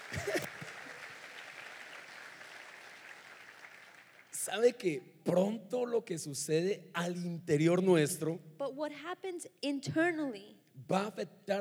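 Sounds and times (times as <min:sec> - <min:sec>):
audience applauding: 0:00.0 - 0:04.9
speech: 0:04.4 - 0:11.6.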